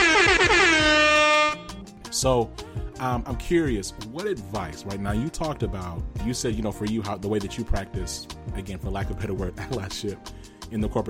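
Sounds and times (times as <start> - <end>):
air horn sound effect blasts: 0.0 - 1.8
speech: 2.2 - 11.0.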